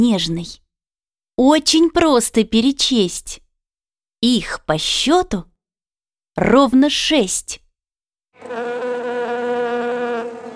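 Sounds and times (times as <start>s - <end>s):
speech: 0.0s - 0.6s, 1.4s - 3.4s, 4.2s - 5.5s, 6.4s - 7.6s, 8.4s - 8.8s
bee buzzing while collecting nectar on a flower: 8.4s - 10.5s.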